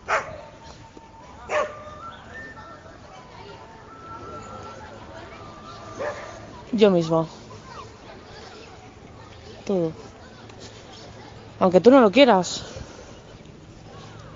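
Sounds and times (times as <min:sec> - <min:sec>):
steady murmur: 0:00.0 - 0:14.3
dog barking: 0:00.1 - 0:00.4, 0:01.5 - 0:01.8, 0:06.0 - 0:06.4
speech: 0:06.8 - 0:07.4, 0:09.7 - 0:10.1, 0:11.6 - 0:12.6.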